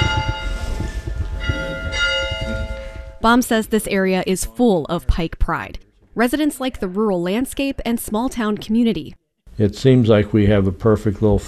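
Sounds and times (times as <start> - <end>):
large bell of a historic one-room schoolhouse ringing: 0.0 - 3.4
speech: 3.2 - 11.4.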